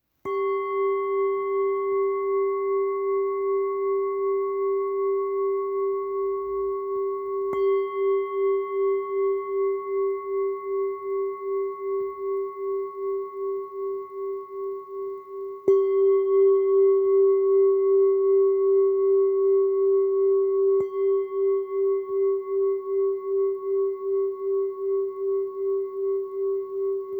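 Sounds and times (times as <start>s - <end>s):
Tibetan singing bowls: 0.2s - 27.1s.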